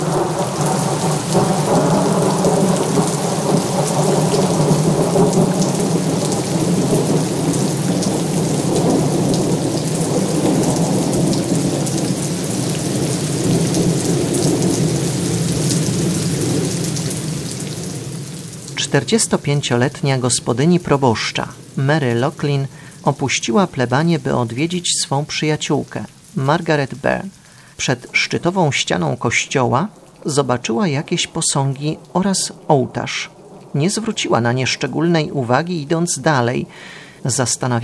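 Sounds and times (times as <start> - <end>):
low rumble of thunder: 0.0 - 18.3
heavy rain downpour: 0.0 - 37.8
speech: 18.9 - 37.8.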